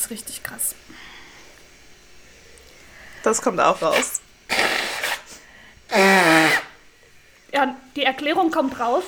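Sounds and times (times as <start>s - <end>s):
speech: 0.1s - 1.2s, 3.2s - 4.2s, 5.9s - 6.6s, 7.6s - 9.0s
person blowing nose: 3.9s - 6.8s.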